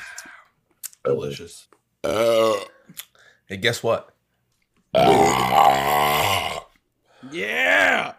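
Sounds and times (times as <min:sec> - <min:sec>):
speech: 0:01.0 - 0:04.2, 0:04.9 - 0:06.2, 0:07.2 - 0:08.1
long loud deep belch: 0:02.0 - 0:02.9, 0:04.9 - 0:06.8.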